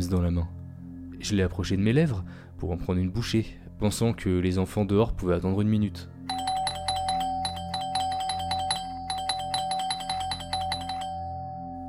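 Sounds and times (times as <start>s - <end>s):
speech: 0.0s - 0.6s, 1.2s - 6.2s
doorbell ringing: 6.3s - 11.8s.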